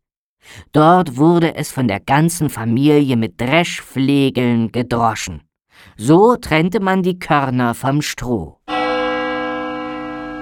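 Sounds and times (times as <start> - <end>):
speech: 0.5 - 8.6
tower clock bell striking: 8.7 - 10.4.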